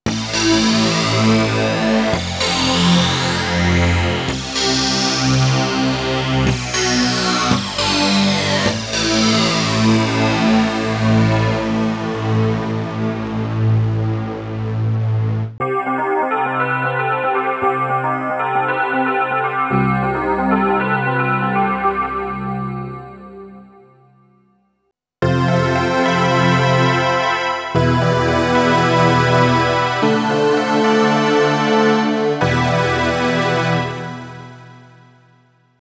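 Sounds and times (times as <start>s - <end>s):
wavetable synthesizer: 0.1s - 23.6s, 25.2s - 34.8s.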